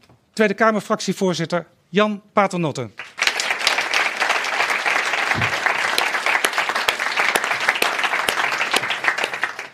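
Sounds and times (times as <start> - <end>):
speech: 0.4 - 3.2
sustained applause from a sizable crowd: 3.0 - 9.7.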